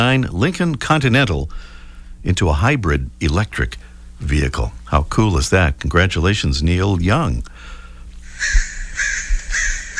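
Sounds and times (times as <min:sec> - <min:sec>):
low rumble: 0:00.0 - 0:09.9
speech: 0:00.1 - 0:07.7, 0:08.4 - 0:09.2
crows cawing harshly: 0:08.2 - 0:09.9.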